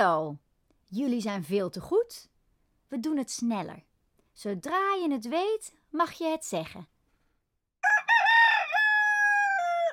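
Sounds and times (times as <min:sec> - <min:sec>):
speech: 0:00.0 - 0:02.3, 0:02.9 - 0:06.9
rooster crowing: 0:07.8 - 0:09.9.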